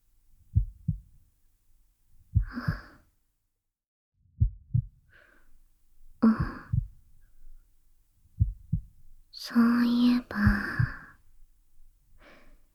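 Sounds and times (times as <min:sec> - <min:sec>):
heartbeat: 0:00.5 - 0:01.2, 0:02.3 - 0:03.0, 0:04.4 - 0:05.1, 0:06.2 - 0:07.6, 0:08.3 - 0:09.2, 0:09.8 - 0:11.1
speech: 0:09.5 - 0:10.7.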